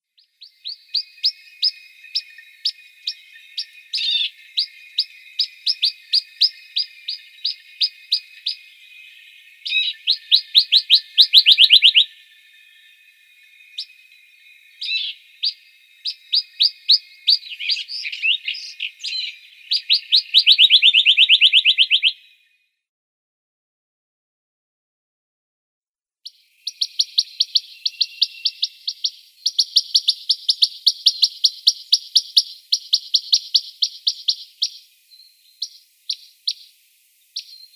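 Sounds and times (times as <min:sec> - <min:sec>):
rock nuthatch calls: 0:00.2 - 0:22.4, 0:26.2 - 0:37.7.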